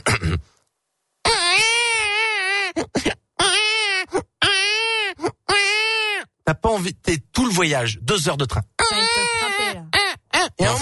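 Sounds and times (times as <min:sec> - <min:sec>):
speech: 0:00.2 - 0:00.6, 0:06.6 - 0:09.0, 0:10.6 - 0:10.8
baby crying on a train: 0:01.2 - 0:06.3, 0:08.8 - 0:10.8.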